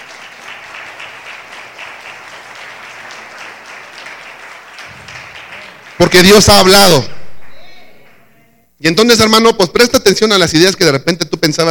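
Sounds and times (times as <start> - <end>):
congregation applauding at a church service: 0.0 - 8.3
speech: 6.0 - 7.2, 8.8 - 11.6.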